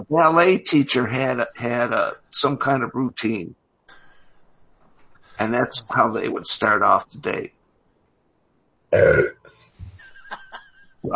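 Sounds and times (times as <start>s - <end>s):
speech: 0.0s - 3.6s, 5.4s - 7.6s, 8.9s - 9.4s
loud throaty burp: 8.9s - 9.5s
laughter: 10.0s - 11.1s.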